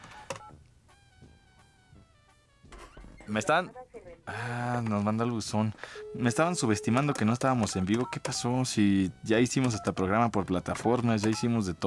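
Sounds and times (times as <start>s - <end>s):
touch-tone telephone keypad beeps as a number is dialed: 0.0s - 0.6s, 4.8s - 11.8s
speech: 3.3s - 11.8s.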